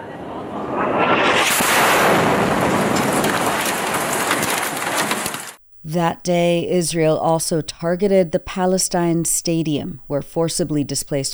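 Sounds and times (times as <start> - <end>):
airstrike explosion hitting a building in a city neighborhood: 0.0 - 5.6
speech: 6.0 - 11.3.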